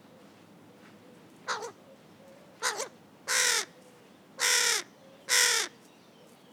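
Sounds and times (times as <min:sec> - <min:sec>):
carrion crow Corvus corone cawing harshly: 0:01.5 - 0:01.8, 0:02.6 - 0:03.7, 0:04.4 - 0:05.8.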